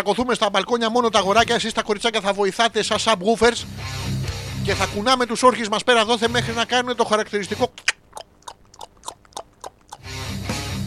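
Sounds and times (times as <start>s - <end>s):
speech: 0.0s - 4.0s, 4.7s - 7.9s
voice imitating horse hooves with tongue clicks: 7.7s - 10.2s.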